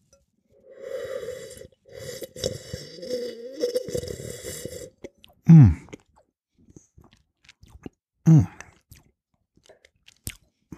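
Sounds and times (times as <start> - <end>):
person slurping barrique-aged wine during a tasting: 0.6 - 5.1.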